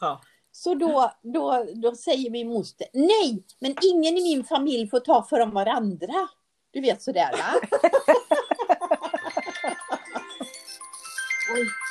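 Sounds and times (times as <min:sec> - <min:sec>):
speech: 0:00.0 - 0:08.3
laughter: 0:07.3 - 0:10.7
mobile phone ringing with a melodic ringtone for an incoming call: 0:08.0 - 0:11.8.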